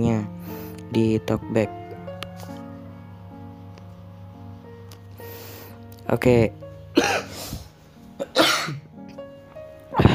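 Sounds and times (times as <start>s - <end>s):
speech: 0.9s - 1.8s, 6.1s - 7.1s
harsh coughs: 7.0s - 7.4s, 8.2s - 8.9s.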